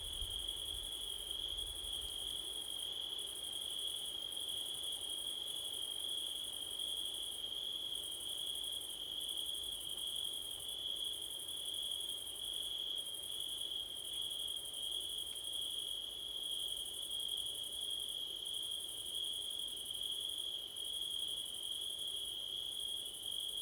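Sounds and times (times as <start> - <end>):
low rustling wind noise on a September night: 0.0 - 0.6
cricket chorus on a windy September night: 0.0 - 23.6.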